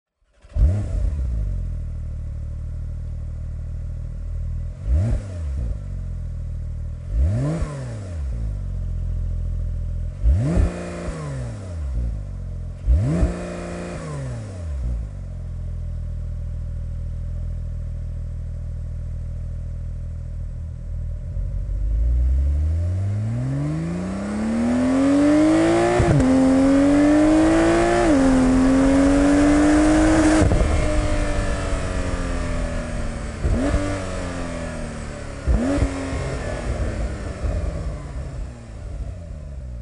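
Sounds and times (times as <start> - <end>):
Porsche 911 Turbo 992 stock exhaust: 0.3 - 39.8.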